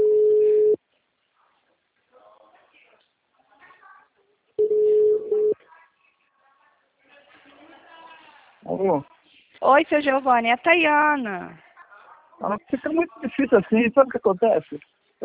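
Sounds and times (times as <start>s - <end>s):
telephone ringback tone on an unanswered call: 0.0s - 0.8s, 4.6s - 5.6s
faint voices talking quietly: 0.5s - 9.6s, 11.4s - 13.8s
speech: 8.8s - 11.6s, 12.4s - 15.2s.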